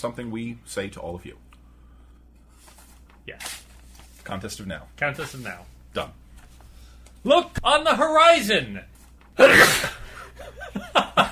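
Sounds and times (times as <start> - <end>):
speech: 0.0 - 1.5, 3.2 - 3.5, 4.3 - 6.2, 7.2 - 10.0
loud human sneeze: 9.4 - 10.1
laughter: 10.1 - 11.3.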